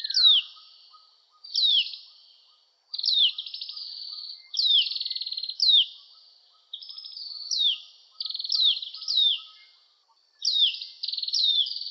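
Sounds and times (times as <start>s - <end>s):
Oriental magpie-robin singing: 0.0s - 2.2s, 3.0s - 9.8s, 10.4s - 11.8s.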